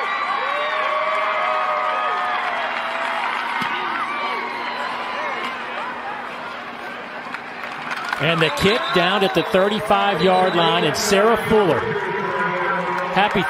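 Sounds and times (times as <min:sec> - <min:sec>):
crowd shouts and whoops: 0:00.0 - 0:05.4
large stadium crowd cheering at a football game: 0:00.0 - 0:13.4
speech: 0:08.2 - 0:12.1, 0:13.2 - 0:13.4.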